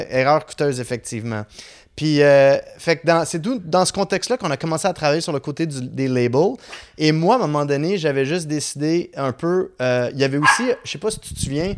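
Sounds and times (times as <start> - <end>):
speech: 0.0 - 11.7
dog barking: 10.4 - 10.9.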